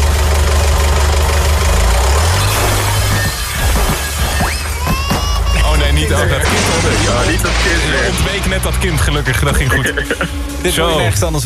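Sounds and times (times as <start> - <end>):
forklift engine starting, revving and driving off: 0.0 - 11.0
laughter: 3.4 - 11.2
speech: 8.5 - 11.4.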